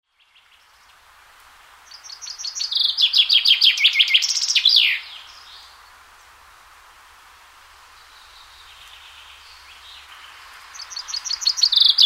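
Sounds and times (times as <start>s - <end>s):
chaffinch song: 1.8s - 6.0s, 7.8s - 12.0s.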